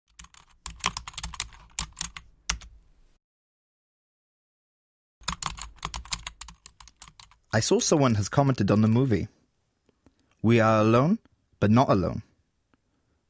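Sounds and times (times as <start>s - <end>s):
typing on a computer keyboard: 0.1s - 2.7s, 5.2s - 7.4s
speech: 7.6s - 9.4s, 10.4s - 12.3s.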